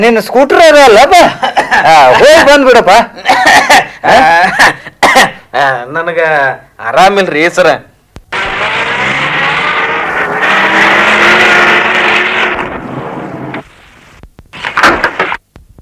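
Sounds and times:
speech: 0:00.0 - 0:07.9
jeep arriving with engine roar: 0:08.3 - 0:13.6
short sharp bursts of noise: 0:08.3 - 0:15.5.

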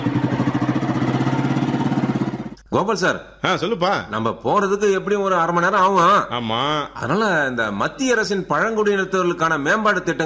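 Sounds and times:
motorcycle engine running: 0:00.0 - 0:02.6
speech: 0:02.8 - 0:10.2.

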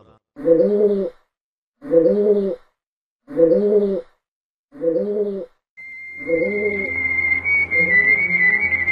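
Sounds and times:
rock pigeon cooing: 0:00.4 - 0:01.1, 0:01.8 - 0:02.6, 0:03.3 - 0:04.1, 0:04.8 - 0:05.5, 0:06.2 - 0:07.0
steady higher whistling tone: 0:05.8 - 0:08.8.

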